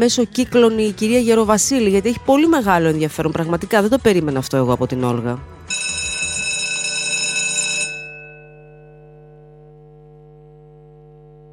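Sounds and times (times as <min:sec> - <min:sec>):
speech: 0:00.0 - 0:05.9
electric bell ringing with a bright buzzing metallic tone: 0:05.7 - 0:10.0.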